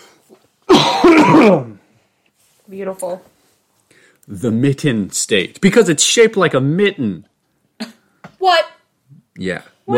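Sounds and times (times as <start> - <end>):
person coughing and clearing throat with something stuck in the throat: 0.7 - 1.8
speech: 1.3 - 1.7, 2.8 - 3.4, 4.3 - 8.8, 9.4 - 9.9.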